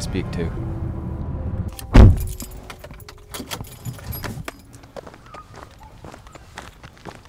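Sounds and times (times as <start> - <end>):
speech: 0.1 - 0.8
sharp thump inside a parked car: 1.8 - 2.4
keys jangling inside a parked car in a parking lot in Perth Ontario: 1.8 - 4.9.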